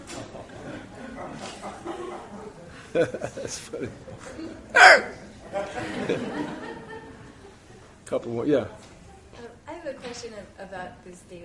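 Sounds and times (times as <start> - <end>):
steady noise: 0.0 - 11.4
laughter: 0.1 - 8.0
speech: 2.9 - 6.8, 8.1 - 8.9, 9.9 - 11.4
dog yelping in surprise: 4.8 - 5.2.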